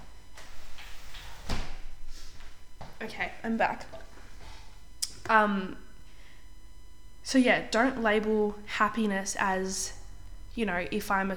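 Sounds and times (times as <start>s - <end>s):
door pushed shut with a solid thud: 1.2s - 1.9s
speech: 3.0s - 4.1s, 5.3s - 5.9s, 7.2s - 10.0s, 10.6s - 11.3s.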